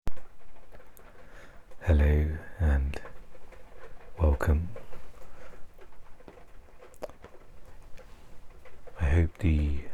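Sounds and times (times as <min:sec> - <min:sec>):
steady rain pattering: 0:00.1 - 0:09.9
speech: 0:01.9 - 0:03.1, 0:04.4 - 0:04.8.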